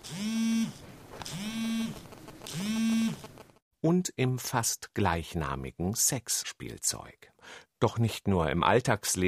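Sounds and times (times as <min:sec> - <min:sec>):
mobile phone vibrating: 0:00.0 - 0:03.6
speech: 0:03.8 - 0:09.2.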